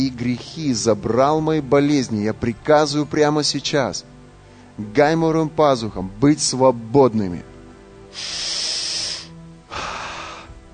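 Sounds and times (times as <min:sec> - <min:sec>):
speech: 0:00.0 - 0:04.1, 0:04.8 - 0:07.5, 0:08.2 - 0:08.4
breathing in through both nostrils: 0:08.1 - 0:10.6.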